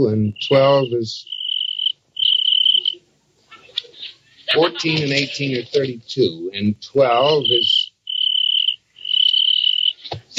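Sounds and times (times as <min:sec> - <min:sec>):
speech: 0:00.0 - 0:01.4, 0:04.5 - 0:07.8, 0:10.1 - 0:10.3
cricket chirping: 0:00.0 - 0:03.1, 0:07.1 - 0:10.3
laughter: 0:03.4 - 0:07.8.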